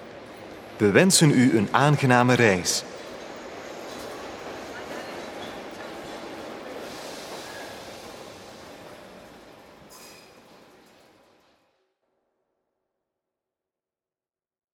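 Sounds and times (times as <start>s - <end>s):
train rolling into a station, wheels rumbling on track: 0.0s - 11.6s
speech: 0.8s - 2.9s.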